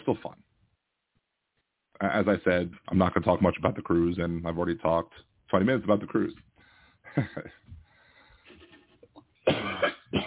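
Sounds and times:
speech: 0:00.1 - 0:00.4, 0:02.0 - 0:06.5, 0:07.1 - 0:07.7
soft breathing: 0:06.5 - 0:09.1
laughter: 0:07.1 - 0:07.7
person coughing: 0:09.4 - 0:10.2.

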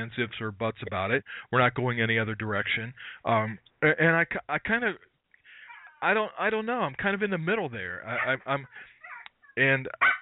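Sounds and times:
speech: 0:00.0 - 0:05.1, 0:06.0 - 0:08.9, 0:09.6 - 0:10.1
small dog barking and yelping: 0:05.7 - 0:06.0, 0:08.1 - 0:09.3, 0:10.0 - 0:10.2.

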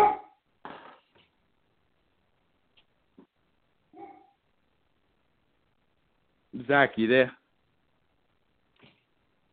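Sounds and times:
dog barking: 0:00.0 - 0:00.4, 0:03.9 - 0:04.4
speech: 0:06.6 - 0:07.4.

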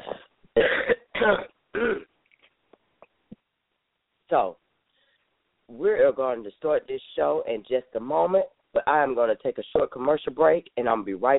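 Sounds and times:
person with a sore throat clearing throat: 0:00.0 - 0:02.1
person with a sore throat coughing: 0:00.0 - 0:02.1
speech: 0:01.2 - 0:01.5, 0:04.3 - 0:04.6, 0:05.8 - 0:11.3.

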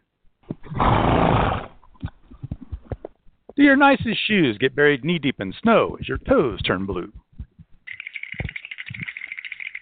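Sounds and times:
horse neighing loud and rough: 0:00.7 - 0:01.8
speech: 0:03.6 - 0:07.2.

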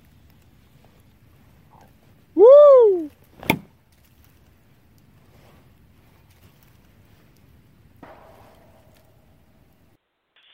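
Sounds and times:
low rumbling outdoor wind: 0:00.0 - 0:10.0
sharp knock: 0:08.0 - 0:09.8.

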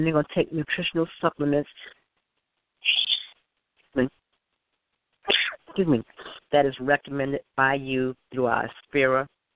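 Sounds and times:
speech: 0:00.0 - 0:02.0, 0:04.0 - 0:04.2, 0:05.3 - 0:09.4
person sneezing: 0:05.3 - 0:06.4.

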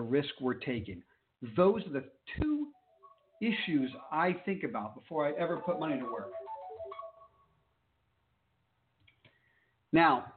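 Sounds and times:
speech: 0:00.0 - 0:02.8, 0:03.4 - 0:06.4, 0:09.9 - 0:10.3
phone ringtone of melodic electronic notes: 0:02.7 - 0:04.1, 0:05.3 - 0:07.6.

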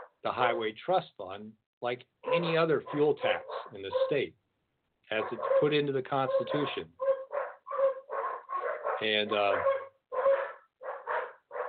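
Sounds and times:
poodles barking at home: 0:00.0 - 0:00.2, 0:02.2 - 0:04.3, 0:05.1 - 0:11.6
speech: 0:00.2 - 0:04.4, 0:05.1 - 0:07.0, 0:09.0 - 0:09.8.

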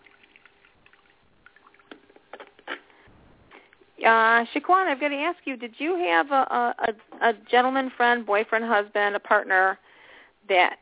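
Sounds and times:
coffee being poured for a coffee reading: 0:00.0 - 0:02.9
speech: 0:04.0 - 0:09.8, 0:10.5 - 0:10.7.

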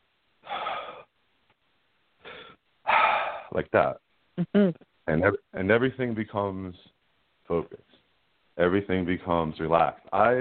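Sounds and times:
calm breathing: 0:00.4 - 0:01.1, 0:02.2 - 0:03.6
speech: 0:03.6 - 0:07.9, 0:08.6 - 0:10.4.

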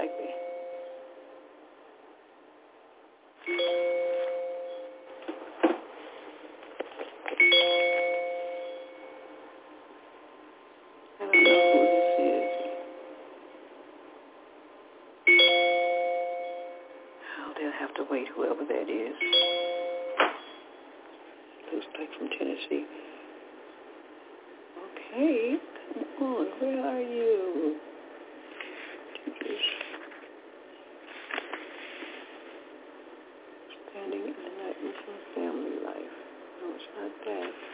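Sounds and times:
faint noise: 0:00.0 - 0:37.7
phone ringing with a bright electronic ringtone: 0:03.5 - 0:05.4, 0:07.4 - 0:09.4, 0:11.2 - 0:13.3, 0:15.3 - 0:17.2, 0:19.2 - 0:20.7.

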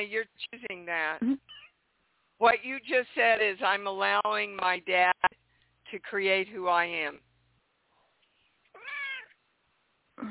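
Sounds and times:
speech: 0:00.0 - 0:01.6, 0:02.4 - 0:07.3
cat meowing: 0:08.8 - 0:09.4.

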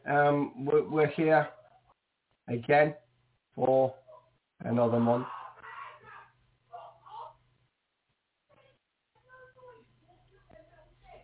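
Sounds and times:
speech: 0:00.1 - 0:01.6, 0:02.5 - 0:03.0, 0:03.6 - 0:04.0, 0:04.6 - 0:05.4
boy shouting upstairs while playing a game: 0:05.2 - 0:07.4.

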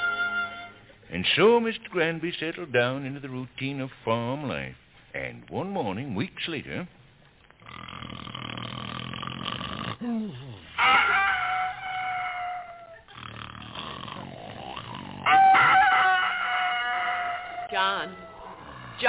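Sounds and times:
speech: 0:01.1 - 0:07.0
rough snore-like rumble: 0:07.6 - 0:10.8, 0:13.1 - 0:15.3, 0:18.3 - 0:19.0
rooster crowing on a farm: 0:10.8 - 0:13.0, 0:15.2 - 0:19.0.

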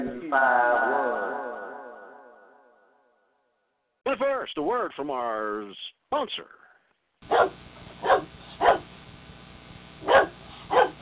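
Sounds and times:
speech: 0:00.3 - 0:01.4, 0:04.1 - 0:06.6, 0:07.2 - 0:07.6
15-year-old dog barking gruff woofs: 0:07.2 - 0:08.9, 0:10.0 - 0:10.9.

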